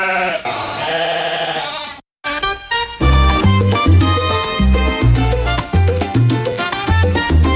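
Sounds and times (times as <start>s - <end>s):
sheep bleating: 0.0s - 2.0s
upbeat music with a heavy bass line: 3.0s - 7.5s.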